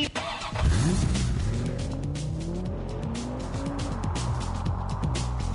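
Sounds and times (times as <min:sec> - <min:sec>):
car engine revving hard in a radio traffic-report sounder: 0:00.2 - 0:05.5
tires squealing and skidding: 0:02.2 - 0:05.5.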